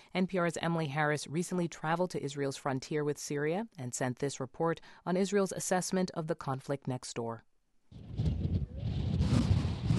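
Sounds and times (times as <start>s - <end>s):
speech: 0.1s - 9.0s
wind gusting hard across a high mountain lookout in the Golan Heights: 8.0s - 9.9s.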